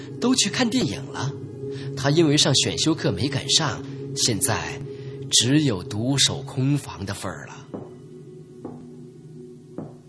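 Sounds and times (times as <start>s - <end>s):
low steady hum: 0.0s - 10.0s
speech: 0.2s - 7.8s
knocking on a door: 7.7s - 8.0s, 8.6s - 9.0s, 9.8s - 10.0s.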